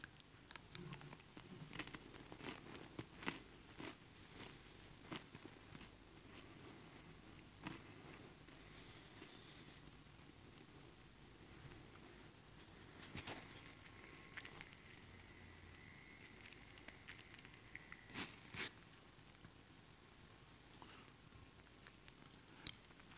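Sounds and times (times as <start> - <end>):
chewing communion bread: 0.0 - 7.0, 12.9 - 19.6, 20.7 - 23.1
faint hiss: 0.0 - 23.1.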